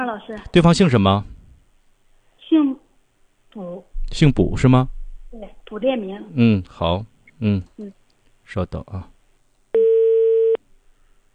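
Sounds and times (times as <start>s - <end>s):
speech: 0.0s - 1.4s, 2.5s - 2.8s, 3.6s - 9.1s
steady telephone ring tone on a phone call: 9.8s - 10.6s.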